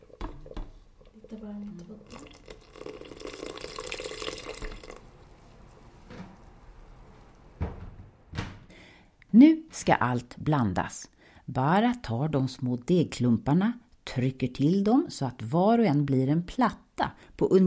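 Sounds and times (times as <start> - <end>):
water pouring into a pot of simmering yogurt sauce: 0.0 - 5.4
kitchen clatter and knocks: 0.1 - 0.8, 7.6 - 8.7
speech: 9.4 - 17.6.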